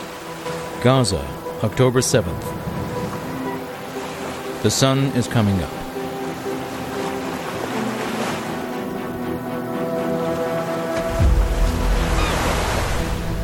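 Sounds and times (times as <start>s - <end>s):
cool breezy wind on the coast of Gaza: 0.0s - 13.4s
faint humming tone of boats moving up and down: 0.0s - 13.4s
sea waves washing on the coast of Gaza: 0.0s - 13.4s
speech: 0.8s - 2.7s, 4.6s - 5.8s
deep rumbling gust: 10.9s - 13.4s.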